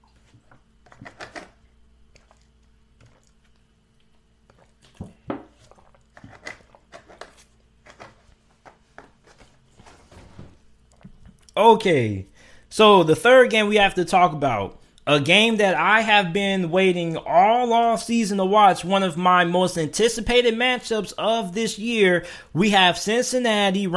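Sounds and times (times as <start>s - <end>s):
faint steady hum: 0.0s - 23.9s
person drinking water: 1.8s - 7.2s, 10.7s - 11.6s
speech: 11.6s - 23.9s.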